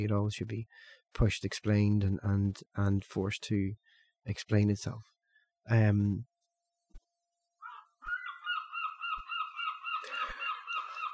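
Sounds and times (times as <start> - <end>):
speech: 0.0 - 6.3
geese honking: 7.6 - 11.1.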